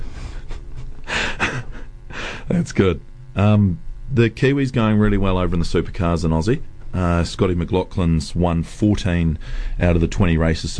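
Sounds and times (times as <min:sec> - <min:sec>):
sharp breathy gasps: 0:02.1 - 0:02.5, 0:09.4 - 0:09.8
speech: 0:02.5 - 0:10.7.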